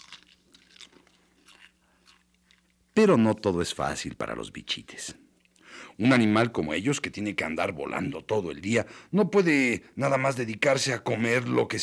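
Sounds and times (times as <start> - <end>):
hairy caterpillar chewing: 0.0 - 3.0
faint steady hum: 0.0 - 11.8
speech: 3.0 - 5.3, 5.9 - 11.8.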